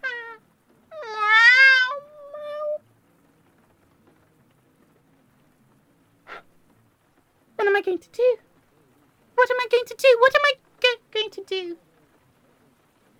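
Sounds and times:
cat meowing: 0:00.0 - 0:02.8
speech: 0:07.8 - 0:08.4, 0:09.5 - 0:10.6, 0:11.3 - 0:11.9.

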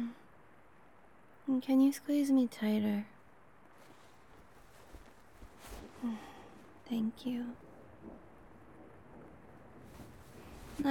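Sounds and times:
steady rain of a thunderstorm: 0:00.0 - 0:10.8
speech: 0:01.5 - 0:03.1, 0:06.9 - 0:08.2
low thunder rumble of a thunderstorm: 0:05.4 - 0:10.8.

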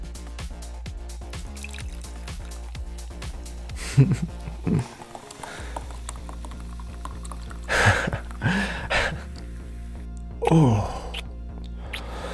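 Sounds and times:
cold liquid poured onto a person's stomach: 0:01.3 - 0:09.8
speech: 0:04.0 - 0:05.0, 0:10.5 - 0:11.0
person gasping softly: 0:05.4 - 0:05.9, 0:07.6 - 0:09.4, 0:10.5 - 0:12.3.

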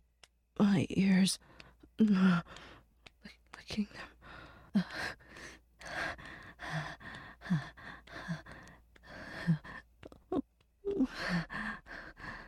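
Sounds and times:
speech: 0:00.8 - 0:02.7, 0:03.7 - 0:04.1
heavy panting breaths: 0:01.4 - 0:02.9, 0:03.9 - 0:09.9, 0:10.9 - 0:12.4.

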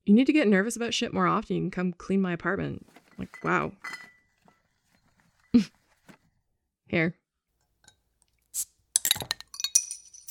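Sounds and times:
speech: 0:00.1 - 0:04.1, 0:05.5 - 0:05.8, 0:06.9 - 0:07.2
soft brush of movement: 0:02.8 - 0:06.3
glasses clinking in a toast: 0:03.1 - 0:05.5, 0:09.0 - 0:10.2.

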